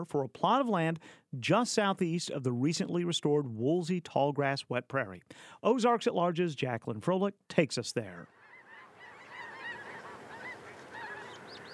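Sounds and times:
speech: 0.0 - 8.4
large flock of snow geese honking overhead: 8.2 - 11.7.

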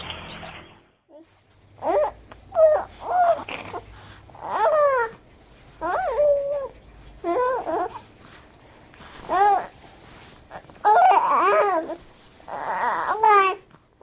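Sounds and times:
baby girl babbling a song: 1.1 - 8.2, 9.2 - 9.8, 10.5 - 14.0.

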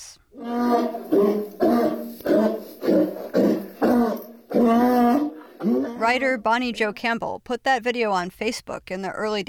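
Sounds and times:
two donkeys braying at a family home: 0.4 - 6.4
speech: 6.1 - 9.4.

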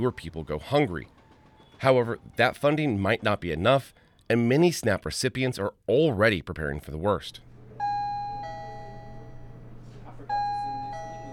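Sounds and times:
speech: 0.0 - 1.2, 1.8 - 7.5
faint indistinct voices: 7.4 - 11.3
electronic entrance chime at a nonprofit grocery store and food pantry: 7.8 - 9.7, 10.3 - 11.3.

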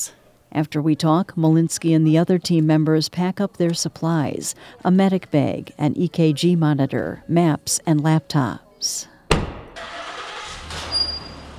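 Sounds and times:
speech: 0.0 - 9.9
car engine turning over and starting: 9.7 - 11.5.

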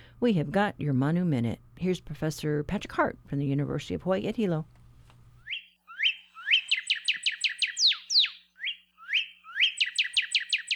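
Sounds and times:
speech: 0.2 - 4.8
northern cardinal singing whistled phrases: 5.5 - 10.7.

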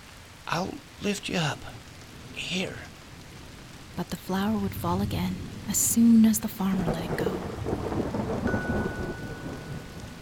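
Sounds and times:
steady rain falling: 0.0 - 10.2
speech: 0.5 - 1.8, 2.4 - 2.9, 4.0 - 8.6
low rumble: 4.4 - 10.1.

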